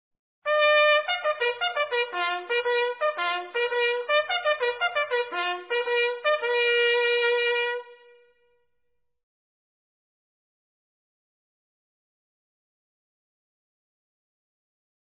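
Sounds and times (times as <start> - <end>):
bugle call: 0.5 - 8.3.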